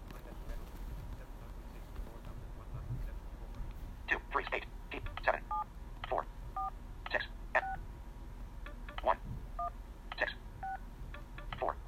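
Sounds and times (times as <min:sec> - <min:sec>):
low steady rumble: 0:00.0 - 0:11.8
speech: 0:04.4 - 0:04.7
touch-tone keypad beeps: 0:05.0 - 0:05.7, 0:08.7 - 0:11.7.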